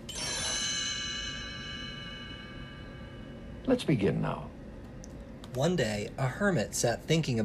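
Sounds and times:
single bright metallic chime ringing: 0.0s - 4.7s
speech: 3.6s - 4.6s, 5.6s - 7.4s.

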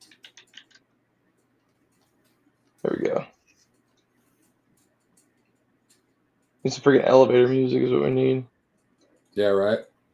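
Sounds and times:
computer keyboard typing: 0.0s - 6.7s
speech: 6.6s - 8.5s, 9.4s - 9.9s.

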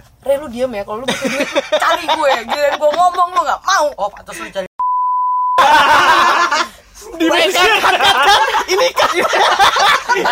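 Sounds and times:
speech: 0.2s - 4.7s, 7.2s - 10.3s
loud laughter: 1.1s - 3.4s, 5.6s - 10.3s
high-pitched censor bleep tone: 4.8s - 5.6s.

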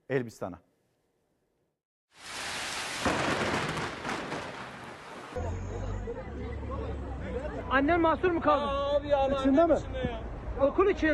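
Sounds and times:
speech: 0.1s - 0.7s, 6.1s - 11.1s
heavy rain pouring down: 2.2s - 5.4s
low rumbles of thunder: 2.3s - 5.4s.

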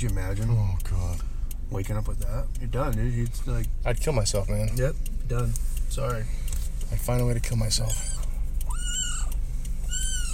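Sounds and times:
speech: 0.0s - 8.2s
low steady hum: 0.0s - 10.3s
cat meowing: 7.9s - 10.3s.

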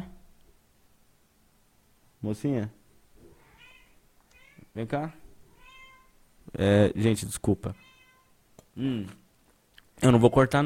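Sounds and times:
speech: 2.2s - 2.8s, 4.8s - 5.2s, 6.5s - 7.9s, 8.8s - 9.2s, 10.0s - 10.6s
domestic cat meowing: 3.2s - 4.8s, 5.4s - 6.2s, 7.7s - 8.4s.

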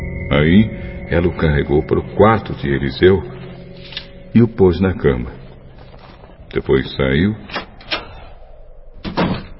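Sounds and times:
speech: 0.3s - 3.4s, 4.3s - 5.4s, 6.5s - 7.6s
door pushed shut with knocking bumps and a heavy thud: 9.0s - 9.5s.

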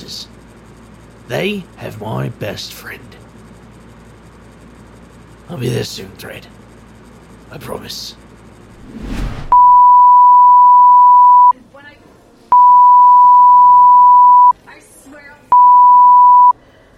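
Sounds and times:
speech: 1.3s - 3.2s, 5.5s - 6.6s, 7.5s - 8.2s, 8.9s - 9.6s
morse code beeps: 9.5s - 11.5s, 12.5s - 14.6s, 15.5s - 16.5s.

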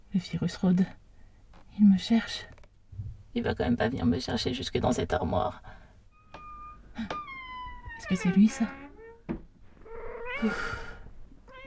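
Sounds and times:
speech: 0.1s - 1.0s, 1.8s - 2.5s, 3.4s - 5.8s, 7.0s - 7.2s, 8.0s - 9.4s, 10.4s - 10.8s
cat meowing: 6.2s - 11.6s
soft thump: 9.2s - 9.5s.

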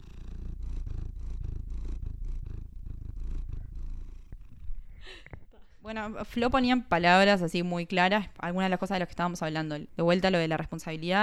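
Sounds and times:
faint rustle: 0.0s - 5.6s
cat purring into the microphone: 0.0s - 9.4s
speech: 5.1s - 11.2s.

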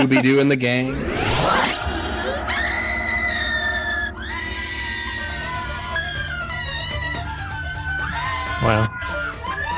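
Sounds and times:
speech: 0.0s - 1.8s, 8.6s - 8.9s
constant low rumble: 0.8s - 7.4s
overlapping voices screaming: 1.2s - 9.7s.

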